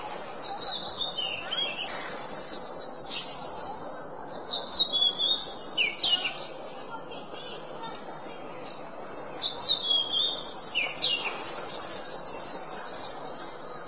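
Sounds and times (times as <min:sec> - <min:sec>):
Oriental magpie-robin whistling and twittering: 0:00.4 - 0:06.5, 0:09.4 - 0:13.8.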